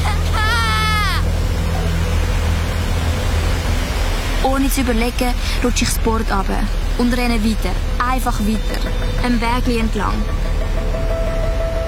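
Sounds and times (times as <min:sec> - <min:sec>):
high-pitched cry or whine: 0:00.0 - 0:01.3
water rushing at a weir: 0:00.0 - 0:11.8
speech: 0:04.6 - 0:10.5.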